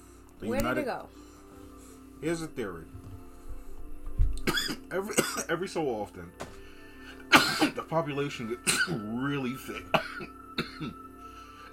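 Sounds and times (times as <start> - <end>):
speech: 0.4 - 1.3, 2.2 - 3.0, 4.9 - 6.5, 7.6 - 11.0
person coughing while smoking: 4.4 - 5.6, 7.3 - 7.9, 8.6 - 9.1, 9.7 - 11.0.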